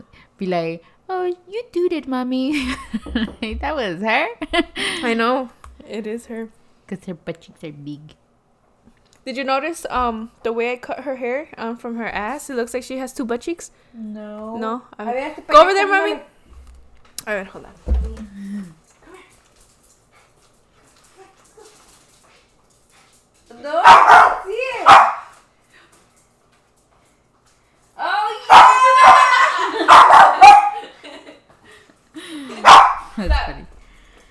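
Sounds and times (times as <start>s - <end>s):
speech: 0.4s - 8.2s, 9.2s - 16.3s, 17.2s - 17.9s, 23.6s - 24.0s
dog barking: 23.7s - 25.3s, 28.4s - 30.9s, 32.6s - 33.2s.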